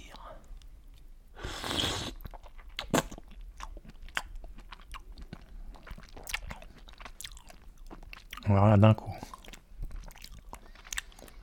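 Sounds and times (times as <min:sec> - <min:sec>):
person slurping and swallowing a raw oyster: 0:01.4 - 0:03.1
soft moist chewing and mouth noises: 0:02.2 - 0:08.5, 0:09.1 - 0:11.4
speech: 0:08.5 - 0:09.4.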